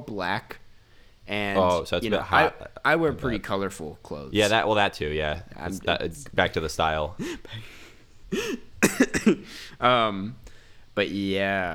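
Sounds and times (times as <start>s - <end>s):
speech: 0.0s - 0.6s, 1.3s - 11.7s
dry harsh cough: 7.2s - 9.8s.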